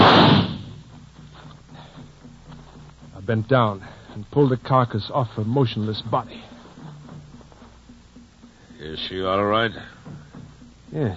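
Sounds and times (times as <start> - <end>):
rifle gunshot: 0.0 - 0.8
speech: 3.3 - 6.5, 8.8 - 10.0, 10.9 - 11.1.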